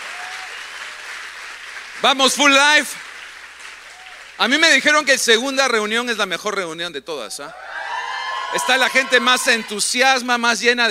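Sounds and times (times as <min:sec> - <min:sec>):
audience applause: 0:00.0 - 0:04.5, 0:07.6 - 0:09.9
speech: 0:02.0 - 0:03.1, 0:04.4 - 0:07.7, 0:08.5 - 0:10.9.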